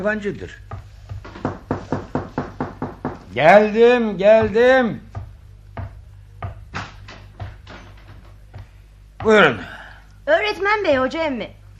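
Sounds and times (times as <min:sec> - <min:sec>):
speech: 0:00.0 - 0:00.8, 0:03.4 - 0:05.1, 0:09.2 - 0:11.7
knocking on a door: 0:00.6 - 0:09.6.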